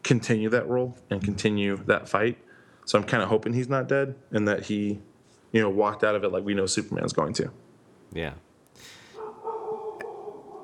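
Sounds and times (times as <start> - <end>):
speech: 0.1 - 9.0
faint dogs yipping and whining: 9.2 - 10.6.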